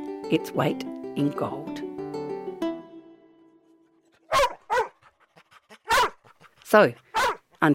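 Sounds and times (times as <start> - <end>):
speech: 0.3 - 1.9, 6.7 - 7.0, 7.6 - 7.7
dog barking with soft yips: 4.2 - 5.1, 5.7 - 6.3, 7.1 - 7.5
dog whimpering with a high whine: 4.3 - 7.5.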